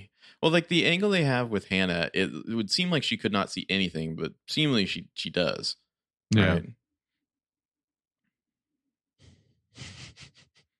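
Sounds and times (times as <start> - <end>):
speech: 0.4 - 6.8, 9.8 - 10.0
heavy breathing: 9.2 - 10.7.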